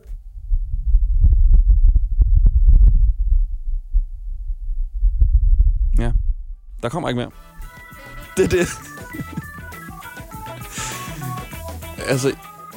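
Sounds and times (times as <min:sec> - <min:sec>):
low rumble picked up by a rover microphone on Mars: 0:00.0 - 0:07.8
speech: 0:06.8 - 0:07.6, 0:08.4 - 0:09.3, 0:12.1 - 0:12.5
laughter: 0:07.6 - 0:09.9.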